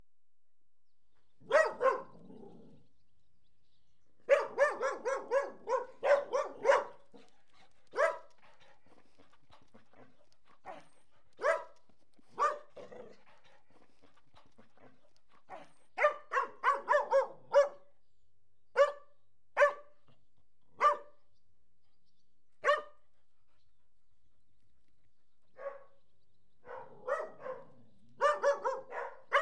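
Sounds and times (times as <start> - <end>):
Collie Airedale cross dogs barking: 1.4 - 2.6, 4.2 - 7.3, 7.9 - 14.0, 14.8 - 17.9, 18.8 - 20.0, 20.8 - 21.2, 22.6 - 23.0, 25.5 - 26.0, 26.6 - 29.4.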